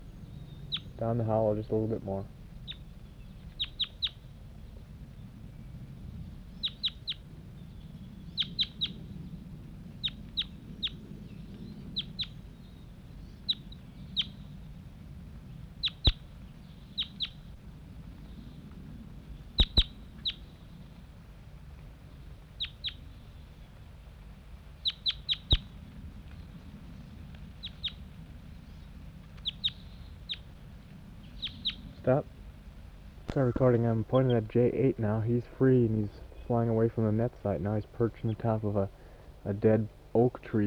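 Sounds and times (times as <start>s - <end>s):
birds chirping after release from a net site: 0.0s - 14.8s, 15.4s - 20.9s, 24.8s - 25.8s, 27.5s - 40.6s
speech: 1.0s - 2.4s, 33.6s - 40.6s
low rumble: 30.8s - 40.6s.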